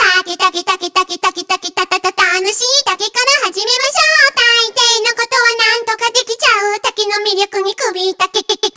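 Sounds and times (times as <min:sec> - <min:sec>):
main vocals: 0:00.0 - 0:08.7.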